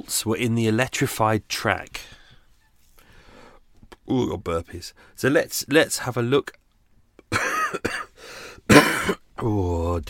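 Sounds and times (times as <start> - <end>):
speech: 0.0 - 2.2, 4.1 - 6.6, 7.3 - 10.0
person coughing harshly: 7.3 - 8.1, 8.7 - 9.3
throat clearing rasps: 8.7 - 9.3.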